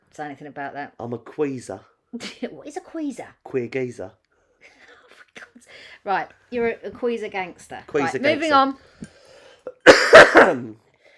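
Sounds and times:
speech: 0:00.2 - 0:04.8, 0:05.6 - 0:09.0, 0:10.1 - 0:10.8
little rough throaty cough: 0:09.7 - 0:10.8.

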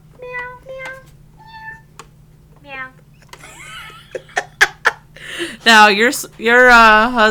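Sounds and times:
cat meowing: 0:00.2 - 0:01.9
laughter: 0:03.4 - 0:05.6
speech: 0:05.6 - 0:07.3.

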